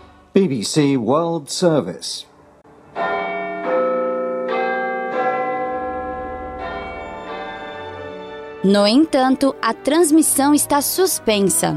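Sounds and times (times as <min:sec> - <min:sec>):
speech: 0:00.4 - 0:02.3, 0:08.6 - 0:11.7
13,760-kilogram clock tower bell in the Elizabeth Tower in the United Kingdom chiming: 0:02.9 - 0:09.5.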